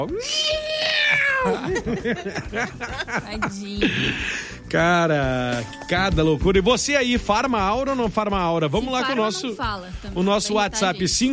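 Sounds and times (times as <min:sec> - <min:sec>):
small whistle mimicking a cat's meow: 0:00.0 - 0:01.6
speech: 0:00.0 - 0:11.3
laughter: 0:01.0 - 0:04.4.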